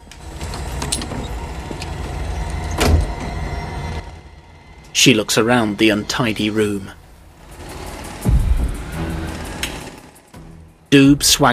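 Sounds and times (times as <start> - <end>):
hotel room door being unlocked, opened and closed: 0.0 - 3.4
steady low rumble: 0.7 - 10.9
speech: 5.0 - 7.0, 10.9 - 11.5.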